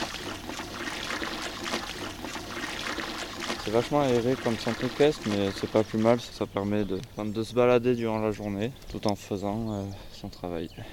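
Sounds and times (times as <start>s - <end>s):
raw water running into a horse trough at an equestrian centre: 0.0s - 6.3s
speech: 3.7s - 10.9s.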